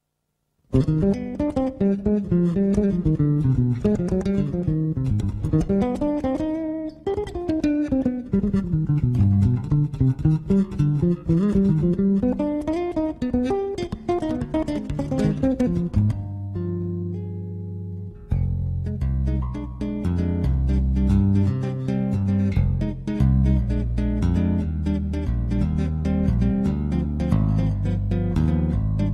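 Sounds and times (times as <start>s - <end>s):
salsa bass solo: 0.7s - 29.1s.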